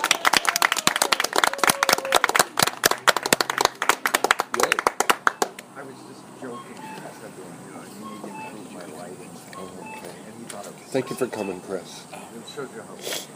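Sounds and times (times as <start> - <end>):
audience applause: 0.0 - 5.6
speech: 10.9 - 13.3.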